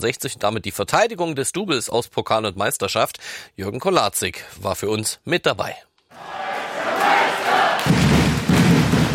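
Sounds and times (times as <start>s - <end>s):
speech: 0.0s - 6.4s
large crowd of fans cheering at a wheelchair basketball final: 6.1s - 9.1s.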